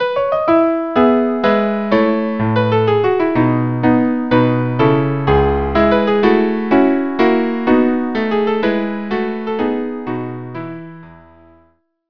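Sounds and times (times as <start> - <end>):
minuet trio: 0.0 - 11.1.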